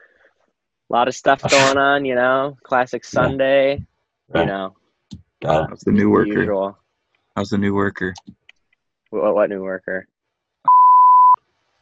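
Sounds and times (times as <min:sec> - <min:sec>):
brief clipped fragments of speech: 0:00.9 - 0:04.7, 0:05.4 - 0:06.7, 0:07.4 - 0:08.3, 0:09.2 - 0:10.0
steady censor bleep tone: 0:10.7 - 0:11.4.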